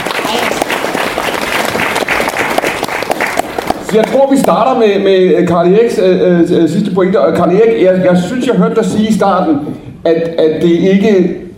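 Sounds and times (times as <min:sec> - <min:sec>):
audience applauding a panel of politicians at a debate event: 0:00.0 - 0:04.6
speech: 0:03.9 - 0:11.4.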